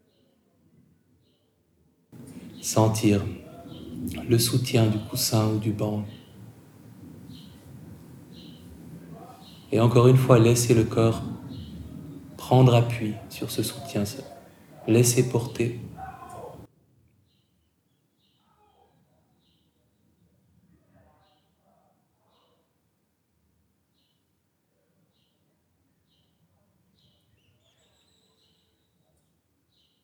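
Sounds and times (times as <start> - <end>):
faint birds chirping outdoors: 0.0 - 1.6, 2.2 - 22.8, 23.8 - 30.0
sounds: 2.2 - 16.7
speech: 2.6 - 3.4, 4.2 - 6.2, 9.7 - 11.4, 12.5 - 14.3, 14.9 - 15.9.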